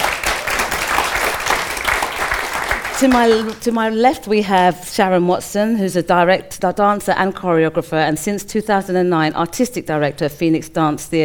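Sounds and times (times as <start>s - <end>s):
crowd applauding a guest artist: 0.0s - 3.7s
speech: 3.0s - 11.2s.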